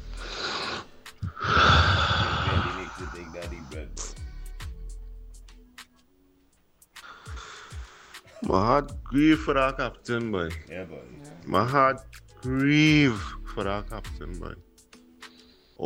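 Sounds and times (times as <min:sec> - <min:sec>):
deep breath in: 0:00.0 - 0:03.4, 0:07.0 - 0:08.3
speech: 0:08.5 - 0:14.7.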